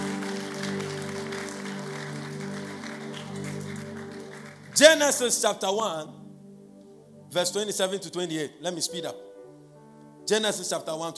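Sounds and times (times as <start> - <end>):
church audience clapping: 0.0 - 5.4
held organ or keyboard chord drone: 0.0 - 10.8
speech: 4.8 - 6.2, 7.3 - 9.3, 10.3 - 11.1.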